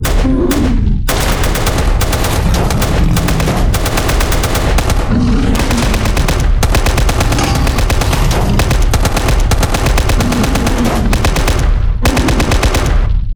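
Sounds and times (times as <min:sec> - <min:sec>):
fight scene sounds: 0:00.0 - 0:13.3.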